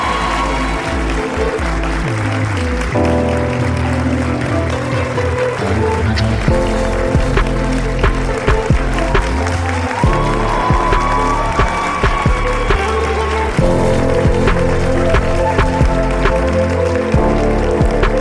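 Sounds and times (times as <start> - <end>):
audience applause: 0.0 - 18.1
tonal music: 0.0 - 18.1.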